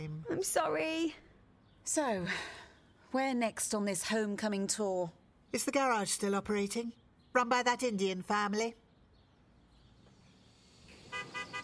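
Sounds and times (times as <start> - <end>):
speech: 0.0 - 1.2, 1.8 - 8.8
low hum of idling traffic: 9.7 - 11.6
car horn honking for a pickup: 10.9 - 11.6.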